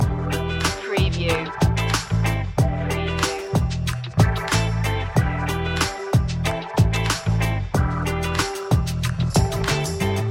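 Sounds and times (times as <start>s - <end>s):
cool funky groove music: 0.0s - 10.3s.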